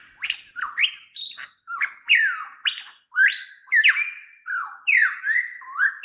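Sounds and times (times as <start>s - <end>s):
superb lyrebird singing: 0.0s - 6.0s.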